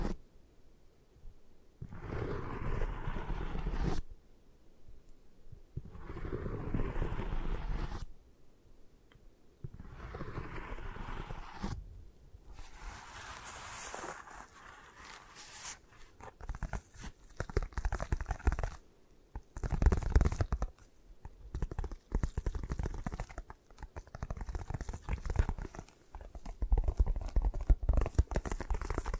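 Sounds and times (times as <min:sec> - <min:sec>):
rubbing strokes for an eye massage: 0:01.8 - 0:04.1, 0:05.8 - 0:08.1, 0:09.7 - 0:11.8, 0:12.5 - 0:18.8, 0:19.4 - 0:29.1
tapping and scratching with crisp clicks: 0:16.2 - 0:18.8, 0:19.4 - 0:29.1.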